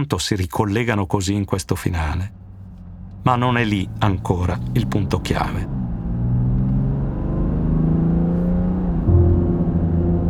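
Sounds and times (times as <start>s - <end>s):
speech: 0.0s - 2.4s, 3.2s - 5.8s
car engine accelerating on a motorway: 1.4s - 10.2s
car gear shift: 1.7s - 9.1s.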